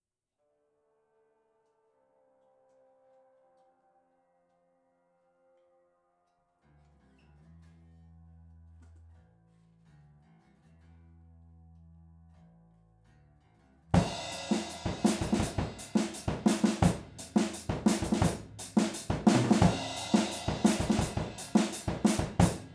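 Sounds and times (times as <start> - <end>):
drums recorded in stereo with Rode overhead microphones: 14.0 - 22.7.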